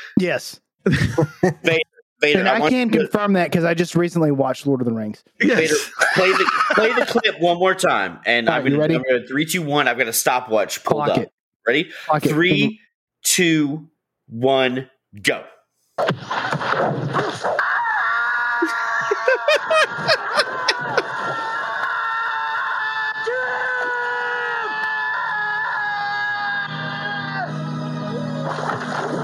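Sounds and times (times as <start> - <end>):
speech: 0.2 - 17.7
laughter: 0.9 - 2.7, 5.4 - 7.3, 18.4 - 22.0
long drawn-out human scream from a film death scene: 17.6 - 28.4.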